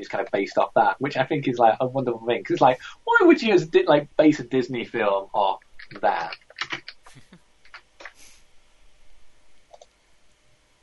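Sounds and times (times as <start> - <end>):
speech: 0.0 - 6.4
frantic typing on a computer keyboard: 5.8 - 8.2, 9.7 - 9.9.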